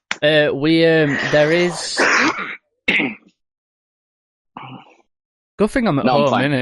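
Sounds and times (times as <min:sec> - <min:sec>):
speech: 0:00.2 - 0:03.2, 0:05.6 - 0:06.5
rough throat-clearing: 0:01.0 - 0:03.3
harsh coughs: 0:01.1 - 0:03.3.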